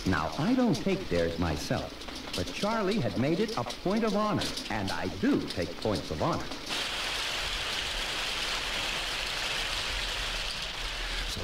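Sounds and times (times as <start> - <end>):
speech: 0.0 - 6.7
heavy rain striking surfaces: 6.7 - 11.4.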